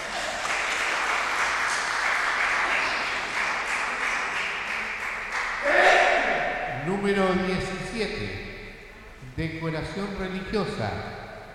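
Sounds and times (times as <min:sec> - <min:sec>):
audience applause at a decoration contest: 0:00.0 - 0:06.3
speech: 0:06.9 - 0:08.5, 0:09.3 - 0:11.2.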